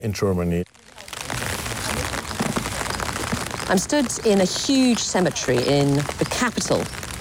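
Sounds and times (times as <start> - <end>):
speech: 0.0 - 0.8, 3.7 - 7.0
rain falling in a cemetery in Magdeburg, Germany: 0.1 - 7.1.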